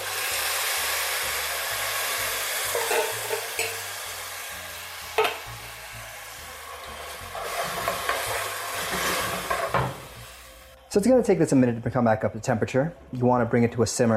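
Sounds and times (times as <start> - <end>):
canned tomato sizzling in a hot pan of frying ginger, garlic and scallions: 0.0 - 10.8
speech: 10.9 - 14.1.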